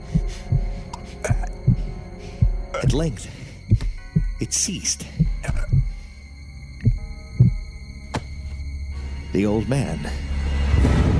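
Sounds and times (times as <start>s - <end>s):
muffled heartbeat: 0.0s - 6.0s, 6.8s - 7.7s
faint steady hum: 0.0s - 10.4s
speech: 2.9s - 3.4s, 4.4s - 5.2s, 9.4s - 11.0s.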